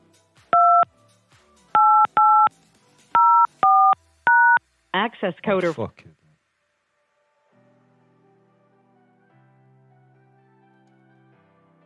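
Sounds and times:
telephone keypad touch-tones dialing into a conference call line: 0.6 - 0.9, 1.8 - 2.5, 3.2 - 4.6
speech: 5.0 - 6.2.

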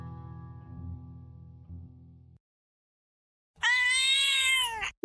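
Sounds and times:
black cat meow processed with warbling distorted effect: 3.6 - 4.9.

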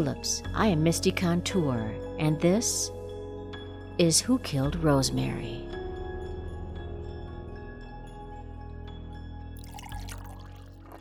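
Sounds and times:
speech: 0.0 - 3.0, 4.0 - 5.7
coffee being poured into a cup: 9.6 - 10.9.

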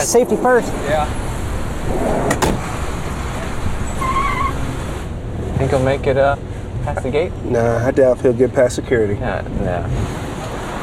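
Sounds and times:
speech: 0.0 - 1.2, 5.6 - 10.2
car door opening and closing: 1.8 - 5.1.

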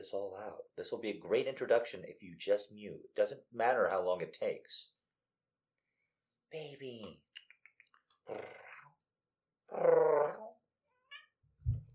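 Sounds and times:
speech: 0.0 - 5.0, 6.5 - 7.2, 8.3 - 8.6, 9.7 - 10.4
cat meowing: 10.9 - 11.4
soft low thump: 11.6 - 11.9.

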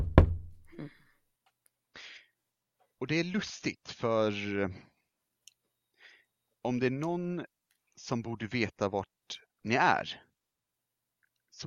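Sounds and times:
heavy knock on a door: 0.0 - 0.6
soft breathy sounds: 1.9 - 2.4, 5.8 - 6.5
speech: 3.0 - 4.9, 6.6 - 10.2.

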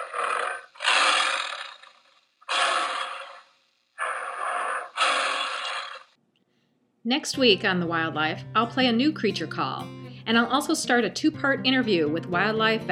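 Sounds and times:
Bengal tiger roaring: 0.0 - 6.1
speech: 7.0 - 12.9.

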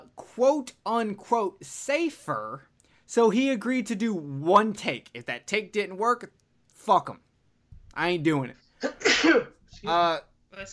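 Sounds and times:
speech: 0.4 - 7.2, 8.0 - 10.7
person sneezing: 8.8 - 9.5.

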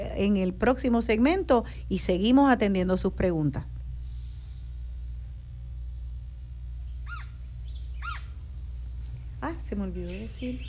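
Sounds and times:
steady low rumble: 0.0 - 10.6
speech: 0.2 - 3.8, 10.4 - 10.6
Puerto Rican woodpecker calls: 6.9 - 9.0, 10.0 - 10.6.

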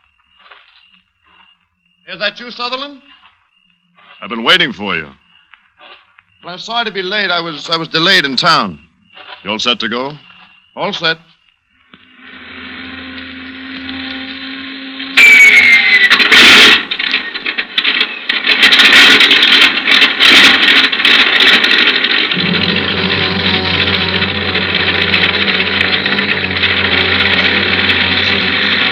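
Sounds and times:
speech: 2.1 - 3.2, 4.2 - 5.2, 6.4 - 8.8, 9.4 - 11.3
airplane engine warming up at an airport: 12.0 - 15.2, 22.4 - 28.9
clanking bursts from airplane engine: 15.2 - 28.9.

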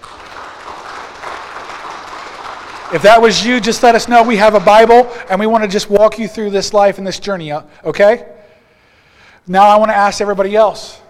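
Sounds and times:
crowd clapping: 0.0 - 5.2
speech: 2.9 - 8.3, 9.5 - 11.0.

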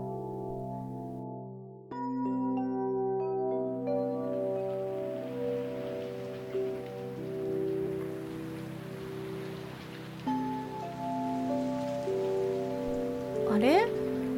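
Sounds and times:
gentle sustained musical tones: 0.0 - 14.3
steady rain falling: 5.2 - 14.3.

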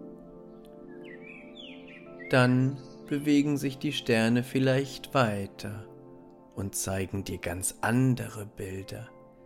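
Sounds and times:
bird chirping in bright rising and sliding whistled notes: 0.4 - 3.8
speech: 2.3 - 5.9, 6.6 - 9.2.

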